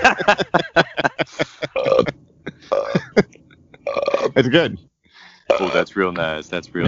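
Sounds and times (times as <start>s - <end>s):
speech: 0.0s - 1.1s, 4.4s - 4.9s, 5.6s - 6.8s
laughter: 0.0s - 3.2s, 4.2s - 4.8s, 5.6s - 6.8s
deep throaty burps: 1.7s - 3.2s, 3.8s - 4.8s, 5.5s - 6.8s.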